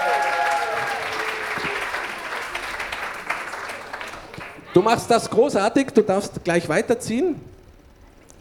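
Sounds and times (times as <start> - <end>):
audience applause: 0.0 - 4.9
speech: 4.7 - 7.5.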